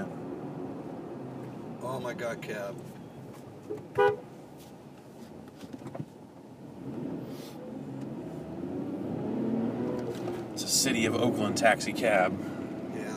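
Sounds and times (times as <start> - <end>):
steady rumble of traffic and engine noise: 0.0 - 13.1
speech: 1.9 - 3.0, 3.7 - 4.2, 10.8 - 12.5
car horn beep in San Francisco: 3.0 - 4.3.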